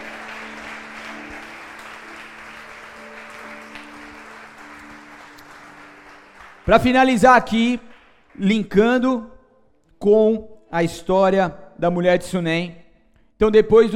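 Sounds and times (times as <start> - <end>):
faint sustained musical tone: 0.0 - 6.8
crowd clapping: 0.0 - 8.9
speech: 6.7 - 9.3, 10.0 - 12.8, 13.4 - 13.9.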